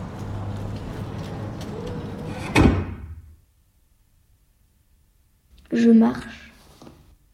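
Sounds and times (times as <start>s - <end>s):
door shutting with a solid thud: 2.2s - 3.4s
speech: 5.8s - 6.4s.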